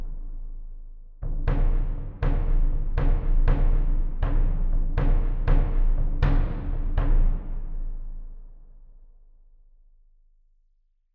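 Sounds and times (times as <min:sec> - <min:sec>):
percussion hits: 0:01.5 - 0:07.7.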